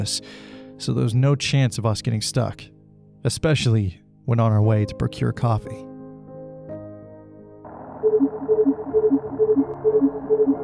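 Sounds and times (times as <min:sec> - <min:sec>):
speech: 0:00.0 - 0:05.9
rapid two-pitch electronic beeping alternating high and low: 0:07.7 - 0:10.6
ambulance dispatch radio alert tones in a snowy city: 0:08.0 - 0:10.6.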